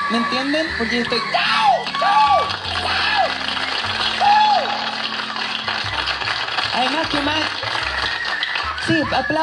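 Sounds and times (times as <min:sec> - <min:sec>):
crowd cheering: 0:00.0 - 0:09.4
speech: 0:00.1 - 0:01.7, 0:06.8 - 0:07.7, 0:08.9 - 0:09.4
whoops and yells: 0:00.1 - 0:03.5, 0:04.1 - 0:05.0
crowd applauding: 0:01.1 - 0:09.4.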